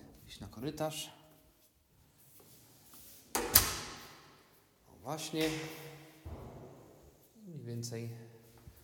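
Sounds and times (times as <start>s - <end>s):
speech: 0.3s - 1.2s, 5.0s - 5.9s, 7.7s - 8.3s
door latch click and rattle: 3.4s - 4.0s.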